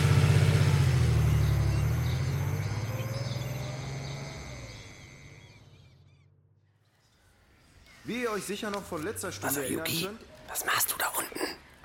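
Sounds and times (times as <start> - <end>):
car engine rumbling as the car drives off toward town: 0.0 - 6.2
faint birdsong: 0.4 - 11.8
speech: 8.1 - 11.6.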